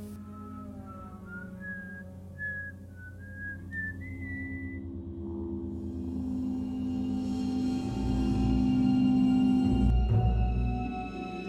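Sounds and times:
low steady deep droning rumble: 0.0 - 11.0
person whistling a short melody of sliding notes: 0.2 - 4.8.

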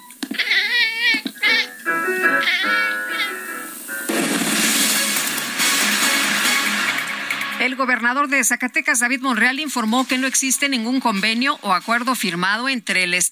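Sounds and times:
cat meowing loudly: 0.3 - 3.5
steady wash of noise: 1.7 - 13.2
speech: 7.8 - 13.2.

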